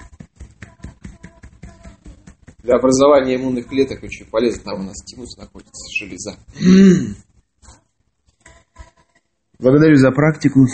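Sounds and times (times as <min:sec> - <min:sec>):
fingers tapping on the breastbone in a self-massage exercise: 0:00.0 - 0:04.1
speech: 0:02.6 - 0:07.2, 0:09.6 - 0:10.7.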